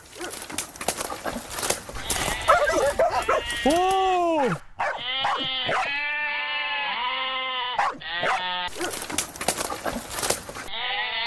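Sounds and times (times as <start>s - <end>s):
sheep flock rustling and shuffling movement: 0.0s - 4.6s, 8.7s - 10.7s
sheep bleating outdoors: 2.0s - 4.2s, 4.8s - 9.0s, 10.7s - 11.2s
speech: 3.6s - 4.6s.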